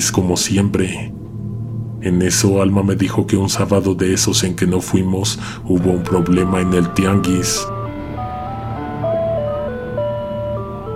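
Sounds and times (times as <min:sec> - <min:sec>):
speech: 0:00.0 - 0:01.2, 0:02.0 - 0:07.7
tinny music-box style ice cream truck jingle: 0:05.8 - 0:10.9.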